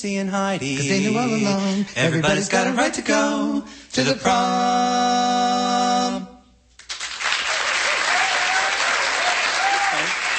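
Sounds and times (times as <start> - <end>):
speech: 0.0 - 6.3
audience applause: 6.9 - 10.3
people whooping: 7.4 - 10.3.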